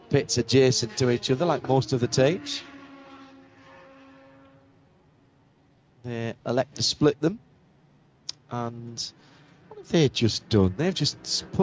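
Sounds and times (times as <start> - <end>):
Acura prototype race car engine droning in pit lane: 0.0 - 6.5, 8.9 - 11.6
speech: 0.1 - 2.7, 6.0 - 7.5, 8.5 - 11.6.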